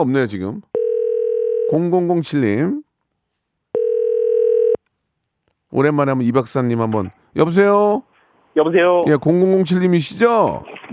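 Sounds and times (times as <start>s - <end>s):
speech: 0.0s - 0.7s, 1.7s - 2.8s, 5.7s - 10.9s
telephone dial tone while a call is placed: 0.8s - 1.7s, 3.7s - 4.8s.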